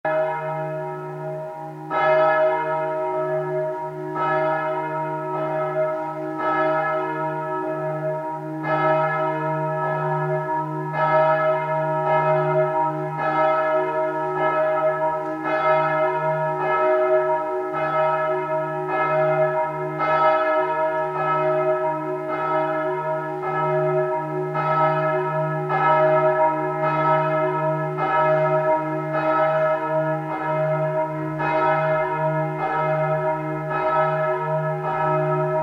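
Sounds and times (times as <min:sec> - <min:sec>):
bell: 0:00.1 - 0:35.6.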